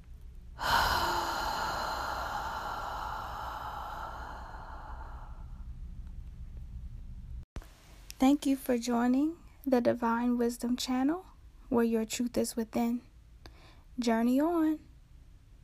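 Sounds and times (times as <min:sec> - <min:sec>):
deep breath during a guided breathing exercise: 0:00.6 - 0:05.7, 0:13.5 - 0:13.9
speech: 0:08.2 - 0:13.1, 0:14.0 - 0:14.9.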